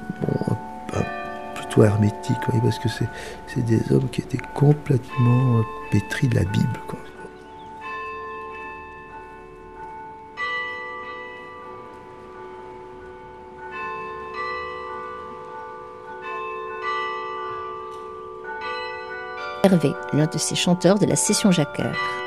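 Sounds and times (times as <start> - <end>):
carillon bells playing in a concert: 0.0 - 22.2
speech: 1.8 - 7.1, 19.6 - 22.2.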